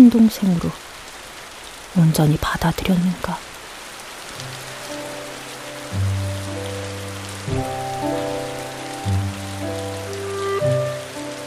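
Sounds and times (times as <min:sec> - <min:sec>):
speech: 0:00.0 - 0:00.9, 0:02.0 - 0:03.5
winter rain falling at night: 0:00.0 - 0:11.4
soft sustained musical chords: 0:06.0 - 0:11.4.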